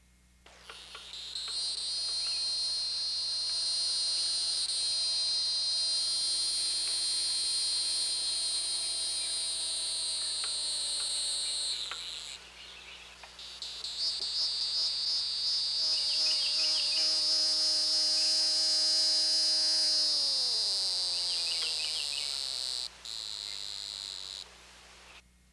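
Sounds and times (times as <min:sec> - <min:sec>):
Neocicada hieroglyphica calling: 0:00.5 - 0:25.2.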